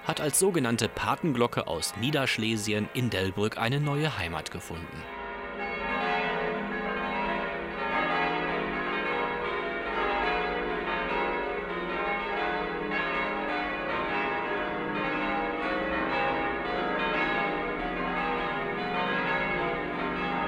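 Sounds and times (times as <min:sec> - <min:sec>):
full peal of six church bells ringing: 0:00.0 - 0:20.4
speech: 0:00.1 - 0:05.2.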